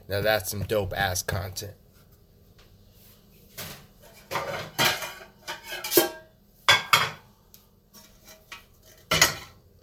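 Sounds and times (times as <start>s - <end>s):
speech: 0.1s - 1.8s
large cooking pot clattering out of a kitchen cupboard: 4.0s - 7.3s, 8.1s - 9.6s.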